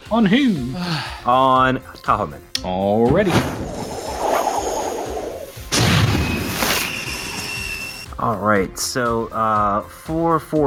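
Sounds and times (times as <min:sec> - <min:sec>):
speech: 0:00.1 - 0:03.8, 0:08.2 - 0:10.6
magic missile spell effect rushing noisy whoosh: 0:03.3 - 0:07.9
loud booming burst of a magic missile spell effect: 0:05.6 - 0:08.1.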